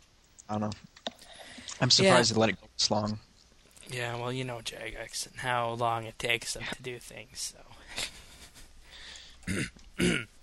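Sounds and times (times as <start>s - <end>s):
speech: 0.5s - 1.0s, 1.8s - 3.3s, 3.9s - 8.2s, 9.5s - 10.4s
man clearing his throat: 9.5s - 10.3s.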